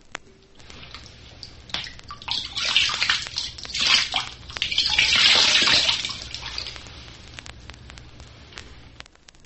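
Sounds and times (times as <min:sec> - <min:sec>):
water dripping from a horn: 0:00.4 - 0:08.7
water poured from a horn into a lake or river: 0:00.6 - 0:07.1.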